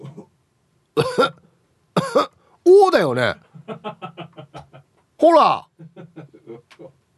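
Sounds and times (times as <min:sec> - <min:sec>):
person forcing a cough: 0:01.0 - 0:01.4, 0:02.0 - 0:02.4
speech: 0:02.9 - 0:03.4, 0:05.2 - 0:05.7
laughter: 0:03.5 - 0:04.9, 0:05.8 - 0:06.9.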